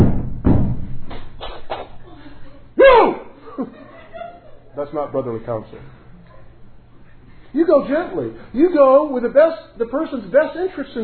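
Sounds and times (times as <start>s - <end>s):
pounding on a door: 0.0s - 1.0s
laughter: 1.9s - 8.4s
speech: 4.9s - 6.0s, 7.5s - 11.0s.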